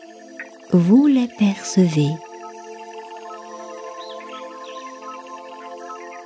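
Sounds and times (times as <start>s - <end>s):
speech: 0.7s - 2.2s
soft warbling birdsong: 3.2s - 6.2s.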